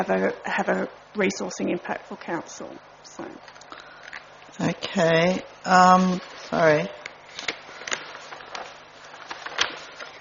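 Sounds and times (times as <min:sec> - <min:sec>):
speech: 0:00.0 - 0:03.6, 0:04.6 - 0:07.0
large paper sheets rustling and crinkling: 0:05.8 - 0:10.1.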